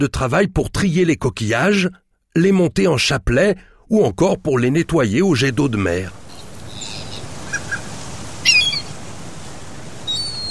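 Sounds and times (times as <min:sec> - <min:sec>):
speech: 0:00.0 - 0:06.2
outdoor hiss: 0:00.0 - 0:10.4
seagull squawking: 0:06.3 - 0:09.0, 0:10.0 - 0:10.4.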